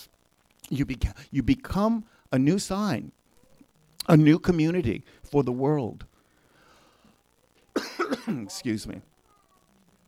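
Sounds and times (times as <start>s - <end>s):
speech: 0.7s - 3.2s, 4.0s - 6.1s, 8.1s - 9.1s
person coughing: 7.8s - 8.5s.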